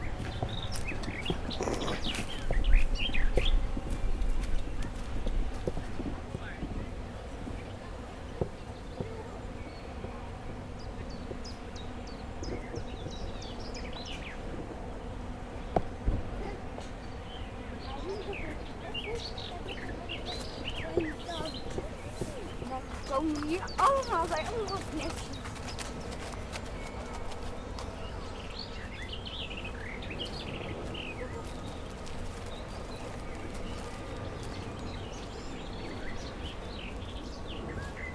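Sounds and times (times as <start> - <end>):
footsteps on freshly laid wood chips: 0.0 - 6.8, 19.2 - 28.5, 30.2 - 35.4
birds chirping: 0.0 - 38.1
insect-like buzzing: 0.0 - 38.1
very large wind turbine hum: 0.0 - 38.1.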